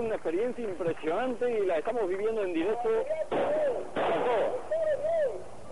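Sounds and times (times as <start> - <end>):
speech: 0.0 - 4.4
loud firecracker blast set off by protesting miners: 3.3 - 5.6.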